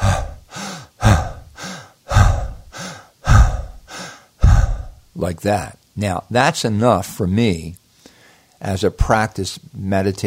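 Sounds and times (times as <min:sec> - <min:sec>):
forceful breathing exercise exhalations during meditation practice: 0:00.0 - 0:05.1
speech: 0:05.2 - 0:07.8, 0:08.6 - 0:10.2.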